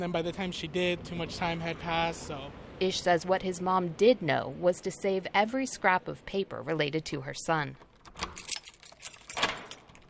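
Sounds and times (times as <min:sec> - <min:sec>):
speech: 0:00.0 - 0:08.4
keys jangling while unlocking an apartment door: 0:08.0 - 0:10.0.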